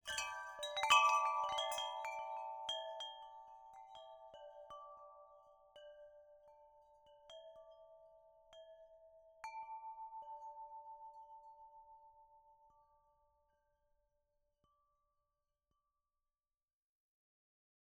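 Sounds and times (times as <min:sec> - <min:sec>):
aluminum pipe wind chimes with wood clapper on a metal chain: 0:00.0 - 0:13.6.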